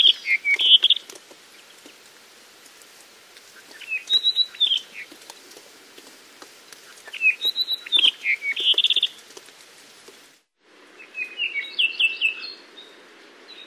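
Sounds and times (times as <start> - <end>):
Apapane song with rapid whistled and buzzy notes: 0.0 - 1.0, 7.0 - 9.2, 11.0 - 13.6
steady background hiss: 0.0 - 13.6.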